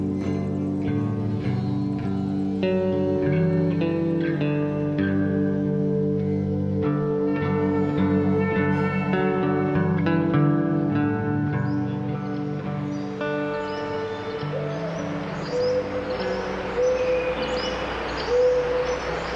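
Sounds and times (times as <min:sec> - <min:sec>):
forest birds hooting and cooing in a redwood forest: 0:00.0 - 0:19.3.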